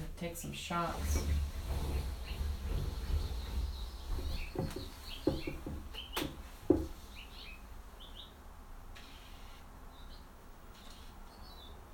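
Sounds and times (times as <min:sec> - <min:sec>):
speech: 0:00.2 - 0:02.9
bird chirping from a tree: 0:02.0 - 0:08.4, 0:09.0 - 0:11.8.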